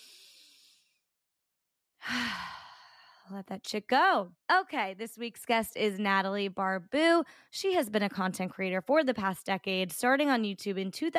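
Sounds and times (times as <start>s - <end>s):
person breathing in and out in a guided breathing exercise: 0.0s - 1.0s, 2.0s - 3.3s
speech: 3.3s - 11.1s.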